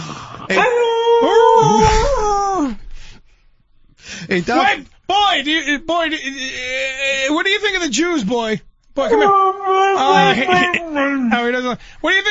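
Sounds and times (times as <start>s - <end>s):
speech: 0.5s - 2.4s, 4.3s - 12.2s
dog whining and whimpering: 9.1s - 11.1s
laughter: 10.0s - 11.6s.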